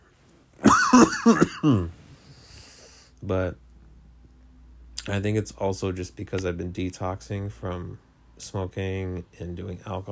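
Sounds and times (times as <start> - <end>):
raspy cough: 0.6 - 1.9
speech: 0.9 - 2.0, 3.2 - 3.6, 5.0 - 10.1.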